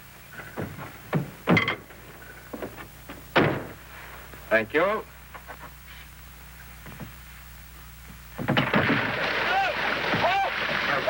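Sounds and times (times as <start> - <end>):
faint mechanical hum: 0.0 - 11.0
firm thud of door shutting: 3.4 - 3.8, 8.4 - 9.1
speech: 4.5 - 5.1.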